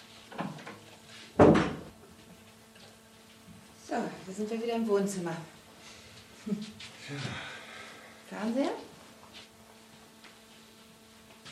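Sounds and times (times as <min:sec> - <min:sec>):
bathroom door swinging shut: 0:01.4 - 0:01.9
speech: 0:03.9 - 0:05.6, 0:06.4 - 0:07.5, 0:08.3 - 0:08.9.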